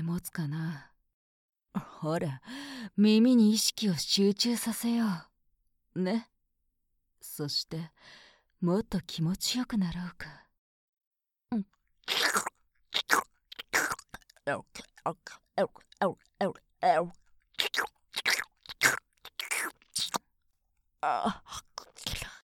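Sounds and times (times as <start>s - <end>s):
speech: 0.2s - 0.9s, 1.8s - 5.3s, 6.0s - 6.3s, 7.2s - 10.4s, 11.5s - 12.5s, 14.4s - 19.0s, 21.0s - 21.7s
ASMR mouth nibbling and chewing on an ear: 12.0s - 20.3s.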